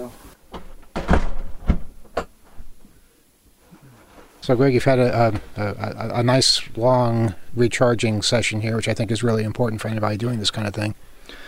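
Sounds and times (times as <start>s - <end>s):
speech: 0.0s - 0.3s, 4.5s - 11.4s
door pushed shut with dull thuds and knocks: 0.5s - 2.3s.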